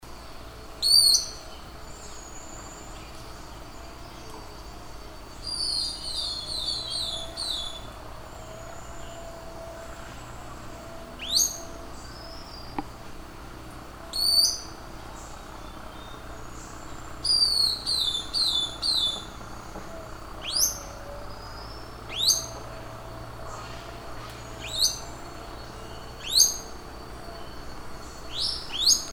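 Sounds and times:
Psarisomus dalhousiae long-tailed broadbill calling: 0.1s - 29.1s.

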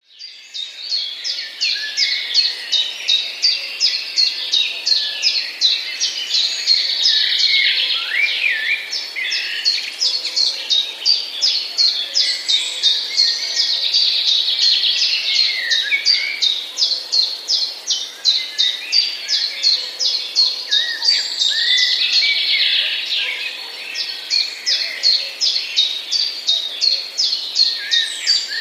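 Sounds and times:
blackbird singing before sunrise: 0.0s - 28.5s.

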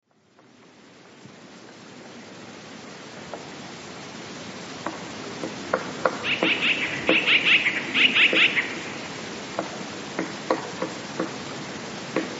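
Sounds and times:
steady hiss: 0.0s - 12.3s
sharp ticks and knocks: 4.8s - 7.4s, 9.5s - 11.4s, 12.1s - 12.3s
Eurasian blue tit calling: 6.2s - 9.1s.

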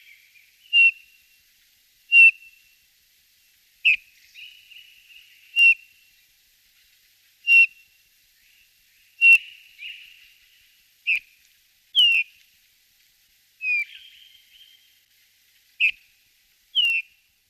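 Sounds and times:
bullfinch calling: 0.7s - 1.1s, 2.1s - 2.6s, 3.8s - 5.9s, 7.4s - 7.8s, 9.2s - 10.3s, 11.1s - 11.3s, 12.0s - 12.4s, 13.6s - 14.6s, 15.8s - 16.0s, 16.7s - 17.2s.

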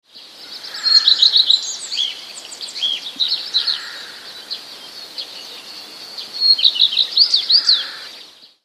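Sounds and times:
common redstart singing with whistles: 0.1s - 8.6s.

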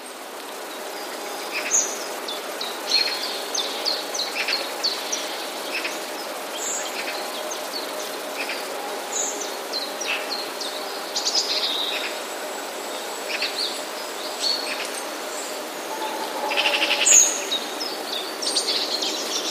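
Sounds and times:
constant hiss: 0.0s - 19.4s
other birds chirping: 15.0s - 18.4s
common chiffchaff short high notes: 15.9s - 17.8s.

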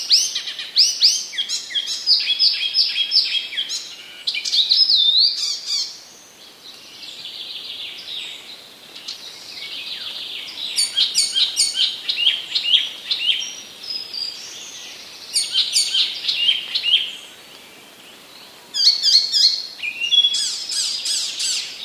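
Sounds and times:
icterine warbler singing: 0.0s - 21.8s.

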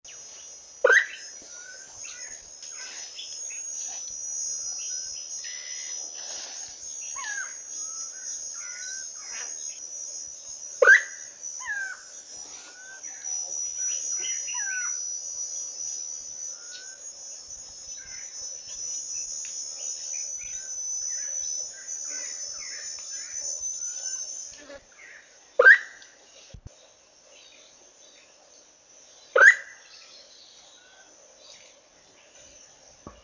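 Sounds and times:
African pitta Pitta angolensis calling: 0.1s - 26.0s, 29.3s - 29.9s.

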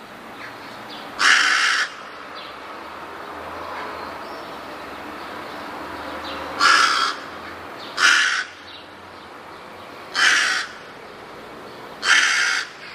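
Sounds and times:
rook giving harsh hoarse caws: 1.2s - 2.1s, 6.5s - 8.8s, 10.1s - 11.0s, 12.0s - 12.9s.

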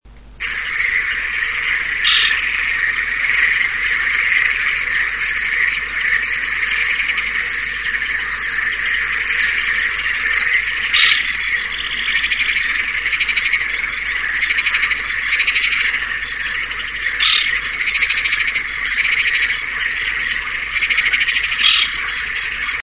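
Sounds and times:
little crake of the rail family calling: 0.4s - 22.8s.

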